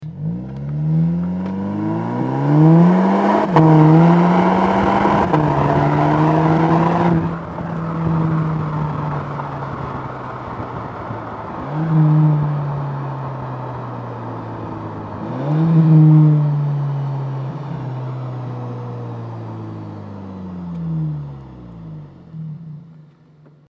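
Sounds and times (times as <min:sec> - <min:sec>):
Golf VII GTI exhaust with catback system recorded from the trunk: 0:00.0 - 0:23.6.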